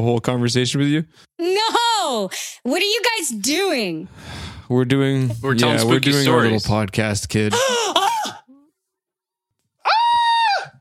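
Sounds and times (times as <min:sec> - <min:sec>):
speech: 0:00.0 - 0:08.1
person screaming from the floor: 0:09.8 - 0:10.7.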